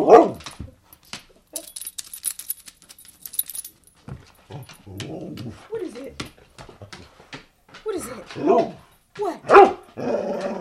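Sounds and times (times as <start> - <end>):
dog barking to get attention: 0.0 - 0.4, 9.4 - 9.9
metallic jingling rattle: 0.9 - 4.9
person talking: 5.6 - 6.3, 7.8 - 8.6, 9.2 - 9.5.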